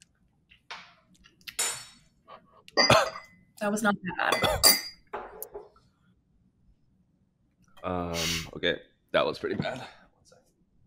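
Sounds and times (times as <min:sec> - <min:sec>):
glasses clinking in a toast: 0:02.8 - 0:03.4, 0:04.3 - 0:05.4
speech: 0:02.8 - 0:04.9, 0:07.9 - 0:10.0.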